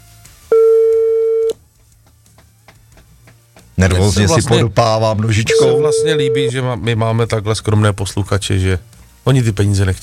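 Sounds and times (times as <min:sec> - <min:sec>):
telephone ringback tone on an outgoing call: 0:00.5 - 0:01.6, 0:05.5 - 0:06.6
speech: 0:03.8 - 0:10.0.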